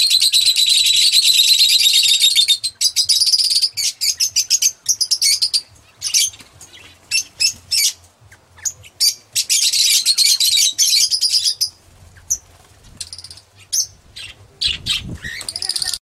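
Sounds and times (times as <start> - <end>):
Oriental magpie-robin singing energetic scratchy phrases and quick chirps: 0.0 - 16.0.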